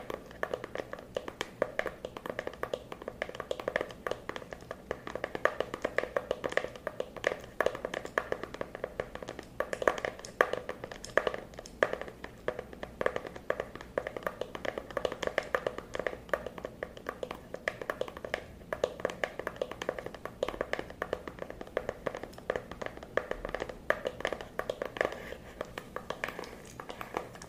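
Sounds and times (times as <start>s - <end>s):
rapid dense tapping: 0.0s - 27.4s.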